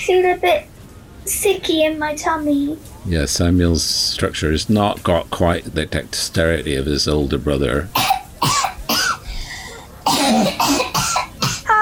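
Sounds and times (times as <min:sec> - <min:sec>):
speech: 0:00.0 - 0:08.7
child coughing: 0:08.0 - 0:09.2, 0:10.0 - 0:11.8.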